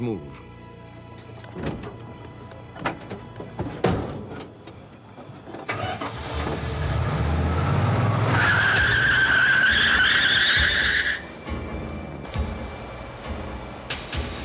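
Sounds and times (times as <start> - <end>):
speech: 0.0 - 0.5
road noise: 0.0 - 14.4
truck tires screeching as it speeds off: 3.7 - 11.5
truck engine revving and rumbling: 5.7 - 14.4.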